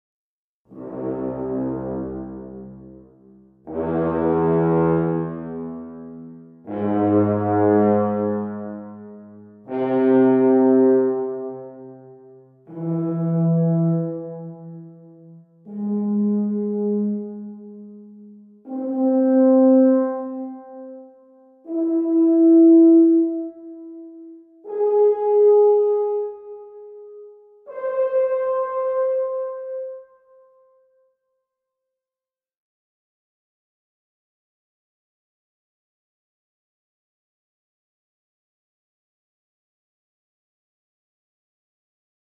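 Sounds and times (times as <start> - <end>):
classical music with space reverb: 0.7 - 31.2.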